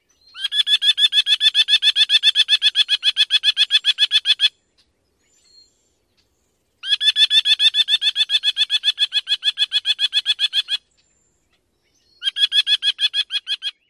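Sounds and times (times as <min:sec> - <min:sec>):
female merlin alarm call: 0:00.4 - 0:04.5, 0:06.8 - 0:10.8, 0:12.2 - 0:13.8.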